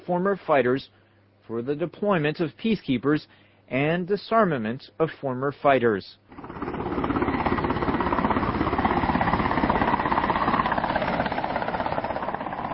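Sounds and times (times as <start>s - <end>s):
speech: 0.1s - 6.6s
helicopter rotor chopping and engine whining as it descends to land: 6.3s - 12.7s.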